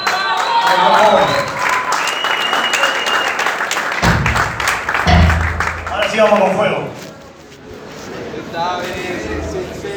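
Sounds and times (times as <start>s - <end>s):
audience applause at a live metal festival concert: 0.0s - 6.6s
crowd noise at a live metal festival concert: 0.0s - 9.9s
speech: 6.2s - 7.0s.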